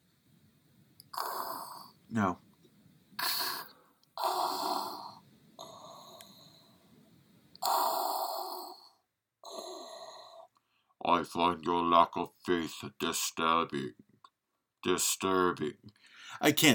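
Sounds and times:
voice imitating heavy mechanical respirator breathing: 0:01.1 - 0:02.0, 0:03.2 - 0:06.6, 0:07.6 - 0:10.5
speech: 0:02.1 - 0:02.4, 0:11.2 - 0:14.0, 0:14.8 - 0:16.7.

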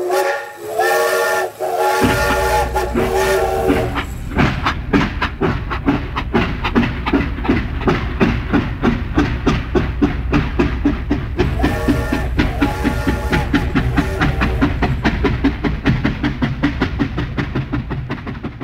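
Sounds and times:
steam train whistle: 0:00.0 - 0:04.1, 0:11.4 - 0:15.1
steam train rhythmic chugging: 0:00.0 - 0:18.6.

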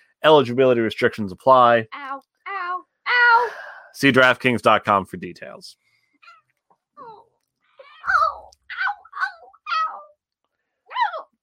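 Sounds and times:
speech: 0:00.2 - 0:02.3, 0:04.0 - 0:05.8
cat meowing and yowling: 0:07.8 - 0:10.1.

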